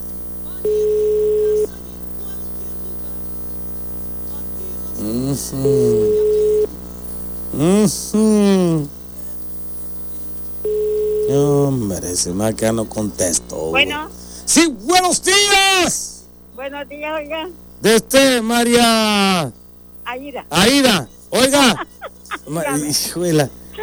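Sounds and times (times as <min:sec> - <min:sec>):
constant mains hum: 0:00.0 - 0:23.8
telephone line ringing tone in Mexico: 0:00.6 - 0:01.7, 0:05.7 - 0:06.8, 0:10.6 - 0:11.9
speech: 0:05.4 - 0:06.0, 0:07.8 - 0:08.9, 0:11.9 - 0:16.0, 0:16.6 - 0:21.9, 0:22.5 - 0:23.6
laughter: 0:21.0 - 0:23.8.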